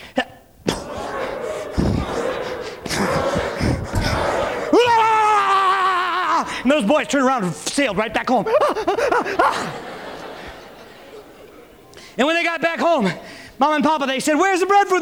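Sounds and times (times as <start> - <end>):
laughter: 0.1 - 13.8
person telling a story: 6.3 - 8.7, 11.9 - 15.0
speech: 6.7 - 9.9, 12.2 - 15.0.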